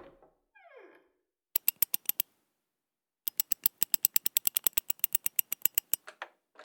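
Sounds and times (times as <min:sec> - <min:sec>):
safe mechanism clicking: 0:01.6 - 0:02.3, 0:03.3 - 0:06.0.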